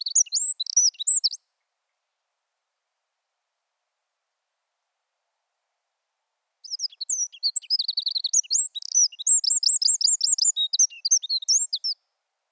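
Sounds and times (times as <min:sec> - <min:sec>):
Eurasian wren singing: 0:00.0 - 0:01.4, 0:06.6 - 0:12.0.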